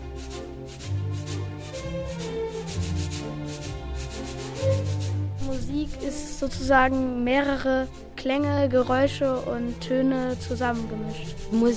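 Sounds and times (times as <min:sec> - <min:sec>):
sandpaper rubbed as a rhythmic instrument: 0:00.0 - 0:05.7, 0:09.6 - 0:11.7
speech: 0:05.8 - 0:11.7.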